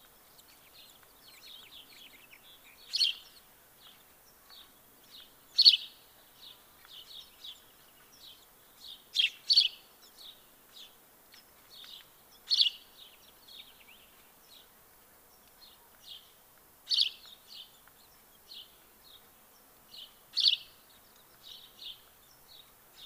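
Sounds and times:
house sparrow Passer domesticus chirping: 0.1s - 23.0s.

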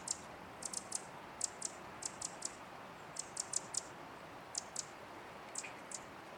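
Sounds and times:
Eurasian wren Troglodytes troglodytes giving sharp clicking tick calls: 0.0s - 2.6s, 3.2s - 3.9s, 4.5s - 4.9s, 5.5s - 6.1s
steady background noise: 0.0s - 6.3s.

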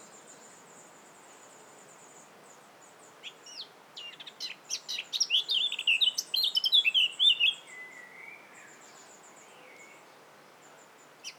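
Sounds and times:
Eurasian blackcap Sylvia atricapilla song with scratchy twittering and mellow whistles: 3.5s - 8.8s.

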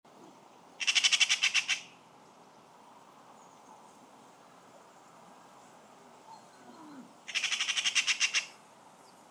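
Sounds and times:
Eurasian magpie Pica pica harsh rattling chatter: 0.8s - 1.8s, 7.3s - 8.5s.

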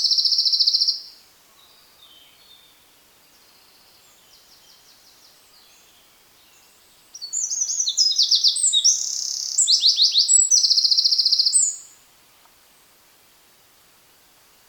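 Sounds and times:
Eurasian wren Troglodytes troglodytes singing with rapid high notes and rattling trills: 0.0s - 1.1s, 5.6s - 11.9s.

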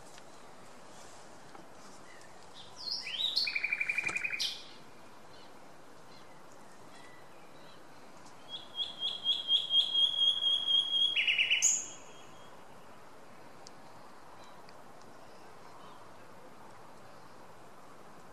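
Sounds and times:
common nightingale (Luscinia megarhynchos) singing: 1.9s - 16.0s.

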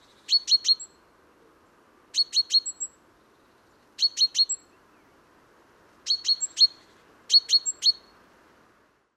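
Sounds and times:
great tit Parus major calling: 0.1s - 0.9s, 2.2s - 3.0s, 4.0s - 4.7s, 6.1s - 8.1s.

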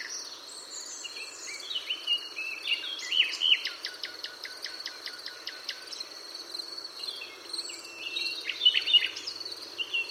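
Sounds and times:
common nightingale Luscinia megarhynchos singing: 0.0s - 6.1s, 7.0s - 10.0s
constant hiss of insects or background noise: 0.0s - 10.0s.

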